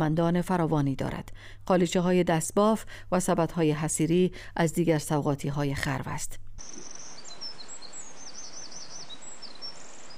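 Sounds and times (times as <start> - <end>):
speech: 0.0 - 7.0
soft outdoor hiss: 1.3 - 10.1
larks singing in spring: 6.6 - 10.1.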